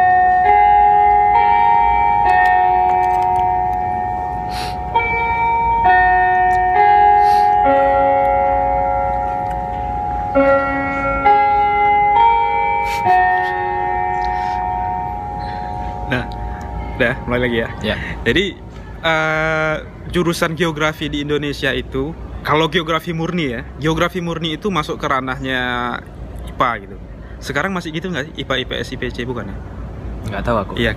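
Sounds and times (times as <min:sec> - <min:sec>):
bell ringing a slow melody of sustained overlapping tones: 0:00.0 - 0:18.2
speech: 0:17.3 - 0:30.9.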